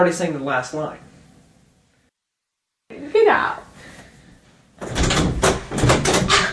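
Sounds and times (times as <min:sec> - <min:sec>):
speech: 0:00.0 - 0:01.1, 0:03.3 - 0:03.6
door being pulled open: 0:04.8 - 0:06.5.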